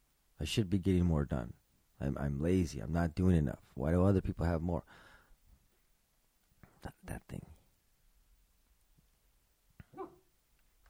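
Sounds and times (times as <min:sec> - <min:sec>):
speech: 0:00.4 - 0:05.1, 0:06.8 - 0:07.6
dog woofing softly in its sleep: 0:09.9 - 0:10.3.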